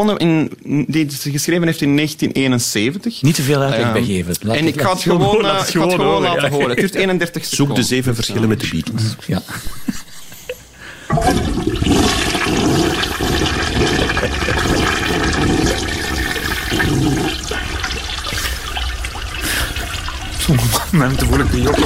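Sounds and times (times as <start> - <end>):
speech: 0.0 - 10.0, 20.5 - 21.8
laughter: 5.0 - 7.7, 9.3 - 10.8, 13.6 - 15.2, 20.4 - 21.8
water draining away in a toilet flush: 11.1 - 21.8.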